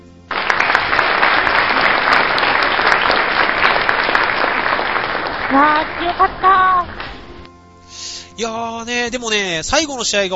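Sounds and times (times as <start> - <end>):
crowd applauding: 0.0 - 7.4
speech: 5.5 - 7.1, 8.4 - 10.3.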